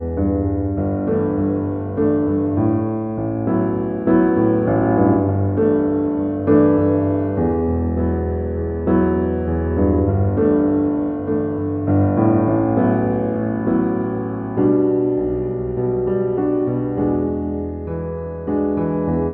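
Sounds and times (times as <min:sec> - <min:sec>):
pop piano: 0:00.0 - 0:19.3.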